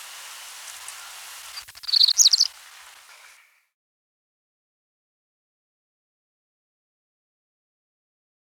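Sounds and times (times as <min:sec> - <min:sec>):
faint clicks: 0:00.0 - 0:03.6
Cinnamon-breasted Bunting song: 0:00.7 - 0:03.5.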